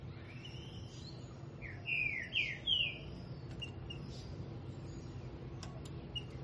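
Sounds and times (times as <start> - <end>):
low background hum: 0.0 - 6.4
green-winged saltator song: 0.2 - 4.2.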